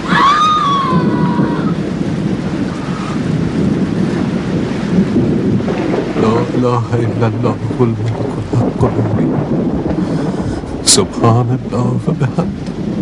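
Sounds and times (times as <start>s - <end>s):
brief high-pitched wail: 0.0s - 1.8s
deep continuous rumble of thunder: 0.0s - 13.0s
heavy rain: 0.0s - 13.0s
speech: 6.6s - 10.3s, 10.9s - 12.6s.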